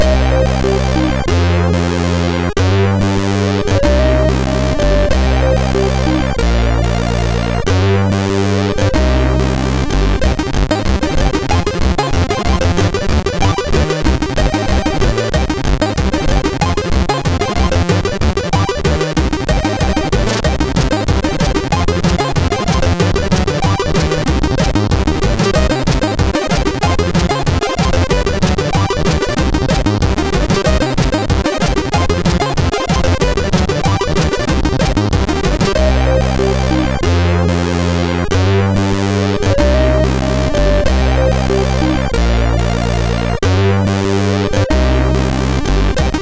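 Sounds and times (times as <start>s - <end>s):
chiptune bass line on SID chip: 0.0s - 46.1s.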